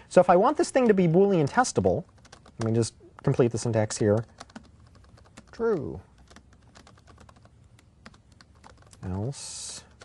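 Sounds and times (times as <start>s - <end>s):
speech: 0.1s - 4.5s, 5.6s - 6.1s, 9.0s - 9.9s
rapid typing on a new laptop keyboard: 2.0s - 9.3s.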